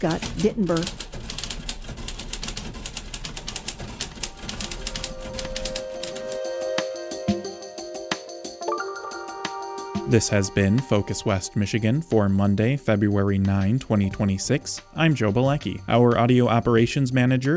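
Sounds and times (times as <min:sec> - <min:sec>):
speech: 0:00.0 - 0:01.1, 0:10.1 - 0:17.5
manual typewriter keys clacking: 0:00.0 - 0:06.4.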